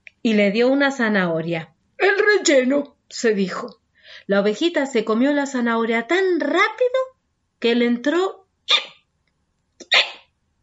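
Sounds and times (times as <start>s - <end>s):
speech: 0.2s - 8.9s
voice imitating sharp breathy hiccups: 8.7s - 9.0s, 9.8s - 10.3s.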